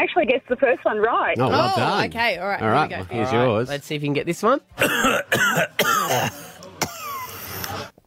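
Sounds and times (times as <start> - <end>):
speech: 0.0 - 6.4
forced exaggerated coughs: 4.8 - 7.6.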